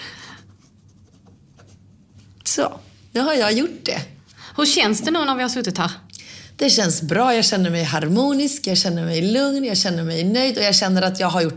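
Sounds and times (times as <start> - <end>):
pen scratching across paper as a name is signed in a book: 0.5 - 1.9
speech: 2.6 - 6.0, 6.6 - 11.5.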